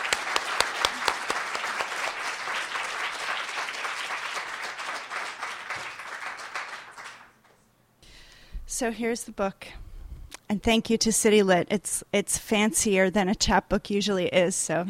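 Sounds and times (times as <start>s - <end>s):
crowd applauding: 0.0s - 7.5s
speech: 8.8s - 9.8s, 10.5s - 14.8s.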